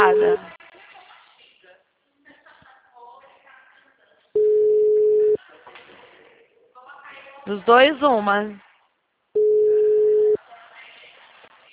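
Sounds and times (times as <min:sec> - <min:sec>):
telephone ringing tone on an unanswered call: 0:00.0 - 0:00.4, 0:04.4 - 0:05.4, 0:09.4 - 0:10.4
speech: 0:00.0 - 0:00.7, 0:07.4 - 0:08.6.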